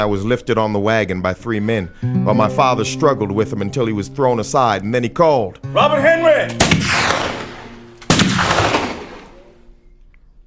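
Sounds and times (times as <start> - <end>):
speech: 0.0 - 7.2
loud single gunshot with long tail: 6.6 - 9.5.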